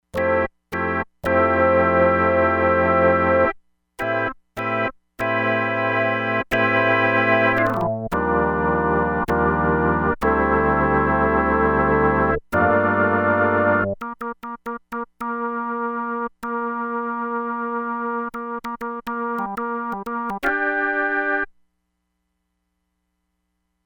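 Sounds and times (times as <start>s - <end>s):
velocity controlled organ with Leslie speaker effect: 0.2s - 21.5s.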